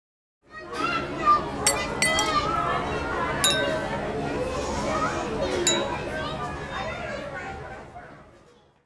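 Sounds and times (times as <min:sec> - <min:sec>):
murmur of chatter: 0:00.5 - 0:08.8
plates, forks, knives, spoons and glasses clinking on a table: 0:01.7 - 0:04.1, 0:05.7 - 0:06.1.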